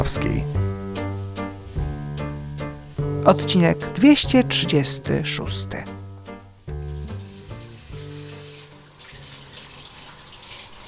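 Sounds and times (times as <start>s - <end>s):
speech: 0.0s - 0.6s, 3.3s - 6.0s
tap water running steadily while dishes are washed: 6.7s - 10.8s.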